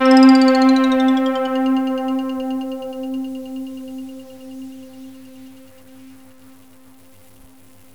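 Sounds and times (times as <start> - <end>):
synthesized ice rain sound effect: 0.0 - 5.0.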